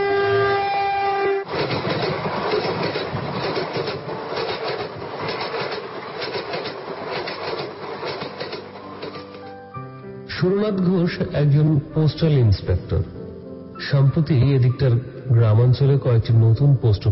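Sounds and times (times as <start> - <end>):
train horn at a small station: 0.0 - 1.6
train rolling rumble and clickety-clack of cars on the rails: 0.0 - 9.7
speech: 10.4 - 13.2, 13.9 - 17.0.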